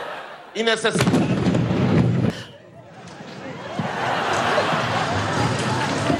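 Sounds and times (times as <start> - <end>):
laughter: 0.0 - 0.6, 2.4 - 6.1
steady wash of crowd commotion: 0.0 - 6.1
loud sharp explosion during a military parade: 1.0 - 2.4.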